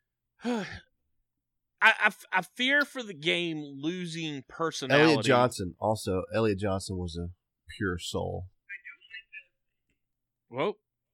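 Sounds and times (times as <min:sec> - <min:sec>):
speech: 0:00.4 - 0:00.8, 0:01.8 - 0:08.5, 0:10.5 - 0:10.8
tinny voice from a small phone speaker: 0:08.7 - 0:09.6.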